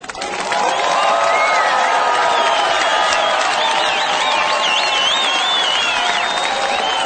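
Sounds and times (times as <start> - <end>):
cheering: 0.0 - 7.0
whistling: 0.6 - 7.0.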